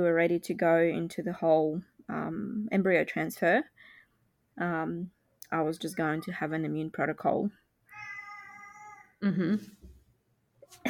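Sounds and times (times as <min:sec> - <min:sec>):
speech: 0:00.0 - 0:03.9, 0:04.6 - 0:07.6, 0:09.2 - 0:09.8
pet cat meowing: 0:07.9 - 0:09.2.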